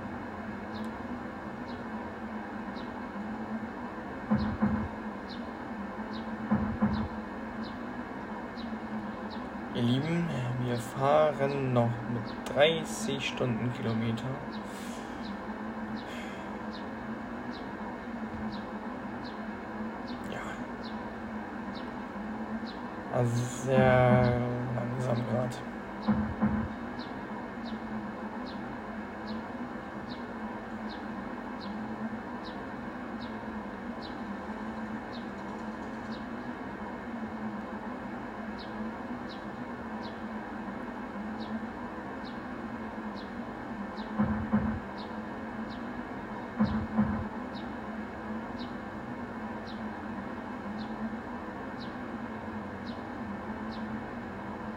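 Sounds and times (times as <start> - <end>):
simulated train rolling along rails: 0.0 - 54.7
brief thumps: 6.5 - 7.1
speech: 9.8 - 14.6, 23.2 - 24.4, 25.0 - 26.2.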